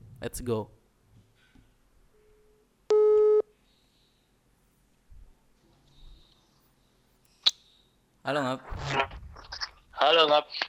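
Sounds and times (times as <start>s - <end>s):
speech: 0.2s - 0.8s, 8.3s - 9.0s
phone ringing tone from an outgoing call: 2.9s - 3.4s.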